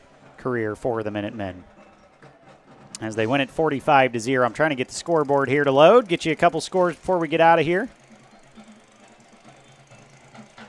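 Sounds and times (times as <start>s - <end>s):
speech: 0.4s - 1.8s, 3.0s - 8.0s
small motorized cart engine running at a football field after a game: 4.2s - 10.6s.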